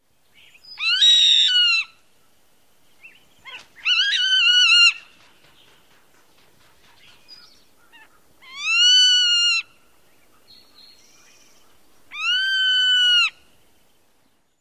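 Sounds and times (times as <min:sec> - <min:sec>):
bird calls near nest: 0:00.3 - 0:14.6.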